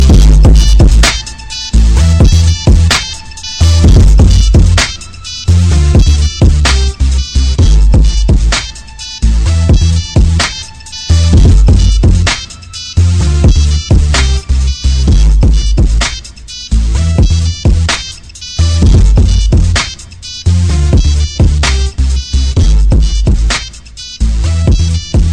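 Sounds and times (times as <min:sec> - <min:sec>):
blues bass tone: 0:00.0 - 0:23.6, 0:24.2 - 0:25.3.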